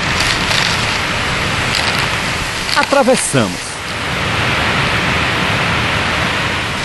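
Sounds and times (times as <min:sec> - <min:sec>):
waterfall roaring, heard from behind the falling water: 0:00.0 - 0:06.8
speech: 0:02.8 - 0:03.7.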